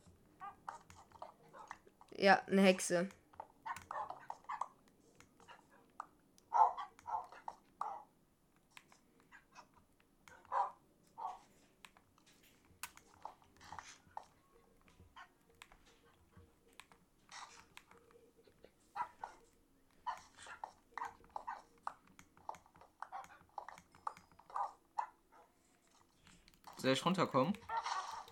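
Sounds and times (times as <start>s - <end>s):
dogs barking and whimpering: 0.4s - 1.9s, 3.4s - 4.8s, 6.5s - 8.1s, 9.2s - 11.5s, 18.5s - 26.0s, 27.6s - 28.2s
speech: 2.2s - 3.2s, 26.9s - 27.7s.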